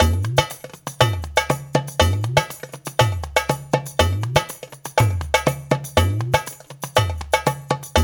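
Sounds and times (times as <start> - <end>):
darbuka drumming for a dance: 0.0 - 8.0.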